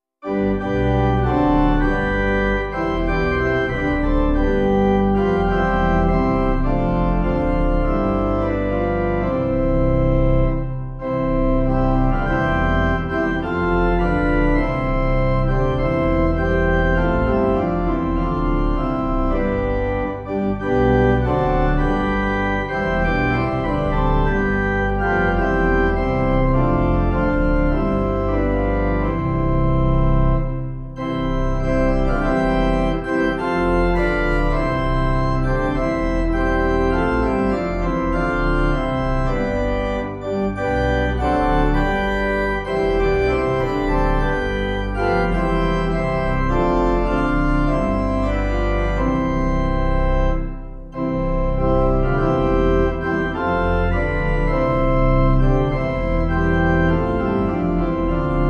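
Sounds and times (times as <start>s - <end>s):
hymn on pipe organ: 0.2s - 58.4s.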